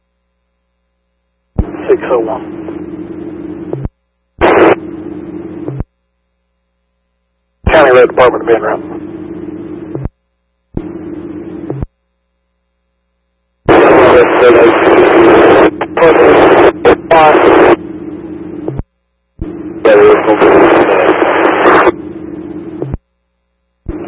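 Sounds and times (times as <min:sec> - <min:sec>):
steady hum of an open two-way radio channel: 0:00.1 - 0:24.0
bursts of harsh radio static: 0:01.6 - 0:05.8, 0:07.7 - 0:10.1, 0:13.7 - 0:23.0, 0:23.9 - 0:24.0
speech: 0:01.9 - 0:02.7, 0:08.2 - 0:08.9.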